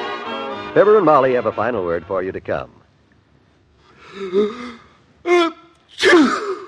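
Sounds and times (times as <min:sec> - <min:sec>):
speech: 0:00.8 - 0:02.8, 0:04.1 - 0:06.6
person sneezing after gasping breaths: 0:04.2 - 0:06.6.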